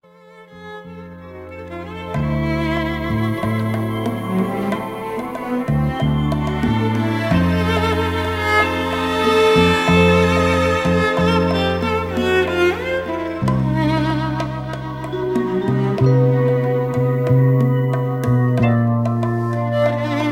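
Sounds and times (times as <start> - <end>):
bongos: 1.9 - 20.3.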